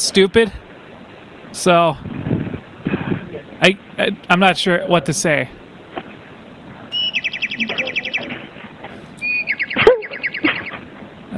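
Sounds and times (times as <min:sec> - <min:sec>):
speech: 0:00.1 - 0:00.6, 0:01.5 - 0:02.1, 0:03.6 - 0:05.6
small birds chirping: 0:04.2 - 0:11.3
low squeaky bird call: 0:06.9 - 0:08.5, 0:09.2 - 0:10.8.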